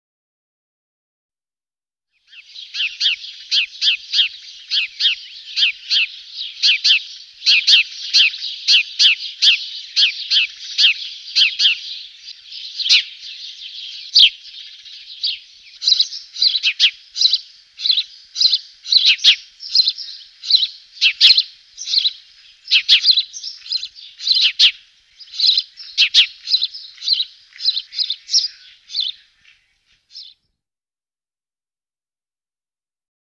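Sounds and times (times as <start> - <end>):
house sparrow singing: 2.3 - 30.4.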